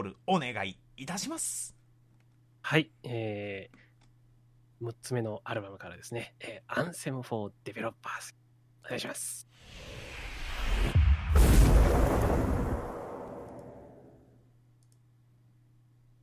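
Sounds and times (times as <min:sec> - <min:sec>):
speech: 0:00.1 - 0:01.8, 0:02.6 - 0:03.8, 0:04.8 - 0:10.1
loud rumbling explosion: 0:09.7 - 0:14.3.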